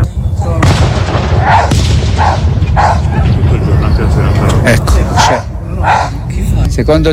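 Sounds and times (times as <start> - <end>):
fireworks booming and crackling: 0.2 - 5.7
constant loud low rumble: 0.5 - 6.7
dog barking amid fireworks: 1.4 - 3.1, 5.1 - 6.2
speech: 6.8 - 7.1.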